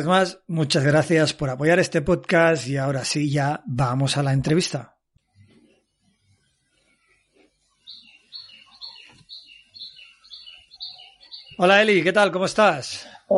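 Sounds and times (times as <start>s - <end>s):
speech: 0.0s - 4.9s, 11.6s - 13.3s
small birds chirping in Phuket: 5.2s - 13.3s.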